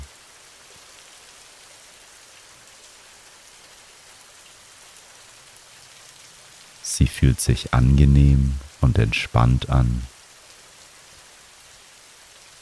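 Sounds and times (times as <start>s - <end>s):
gentle rain falling: 0.0s - 12.6s
speech: 6.9s - 10.1s.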